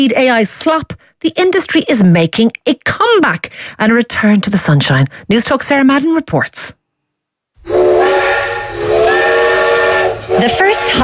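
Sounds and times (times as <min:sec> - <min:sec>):
speech: 0:00.0 - 0:06.8, 0:10.4 - 0:11.0
steam train whistle: 0:07.6 - 0:11.0.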